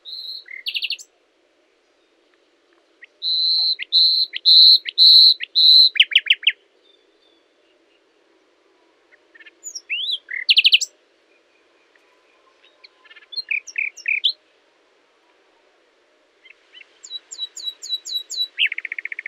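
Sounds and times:
common nightingale singing (Luscinia megarhynchos): 0.0 - 1.1, 3.0 - 8.1, 9.1 - 14.4, 16.4 - 19.2.

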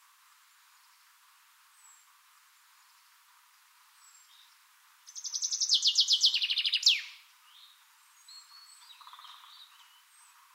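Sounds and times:
common chaffinch song, Fringilla coelebs: 2.7 - 10.5.

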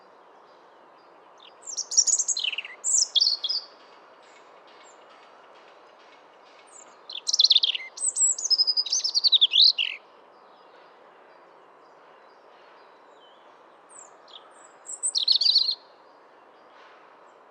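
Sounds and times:
European robin Erithacus rubecula singing: 0.4 - 5.5, 6.6 - 10.9, 11.8 - 16.7.

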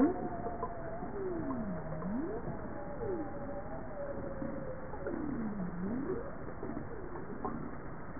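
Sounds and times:
higher wavering tone: 0.0 - 7.7
bowhead whale moaning calls: 0.0 - 7.8.

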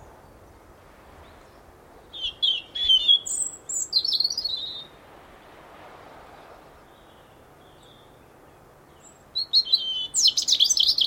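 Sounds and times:
background hiss: 0.0 - 11.0
European robin Erithacus rubecula singing: 1.2 - 5.0, 6.8 - 11.0.

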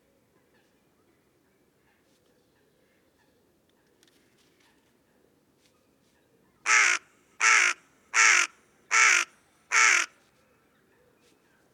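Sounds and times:
carrion crow cawing: 6.7 - 10.1.

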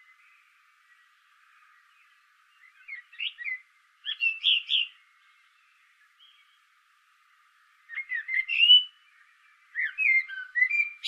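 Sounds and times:
common blackbird Turdus merula singing: 0.0 - 6.7, 7.8 - 11.0.

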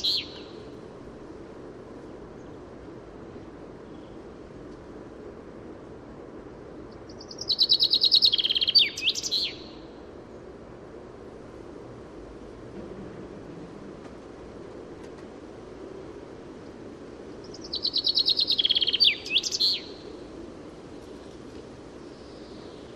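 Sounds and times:
Common chaffinch Fringilla coelebs song, a rapid cascade of bright notes: 0.0 - 4.4, 6.6 - 11.8, 14.6 - 22.9
quiet background hiss: 0.0 - 22.9.

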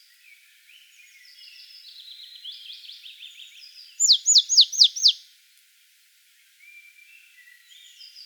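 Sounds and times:
Poecile palustris marsh tit giving high downslurred notes: 4.0 - 5.2.

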